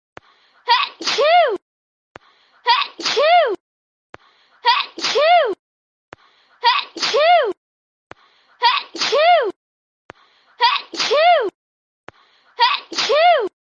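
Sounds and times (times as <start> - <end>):
funny sneeze: 0.7 - 1.6, 2.7 - 3.6, 4.7 - 5.6, 6.6 - 7.6, 8.6 - 9.6, 10.6 - 11.6, 12.6 - 13.5.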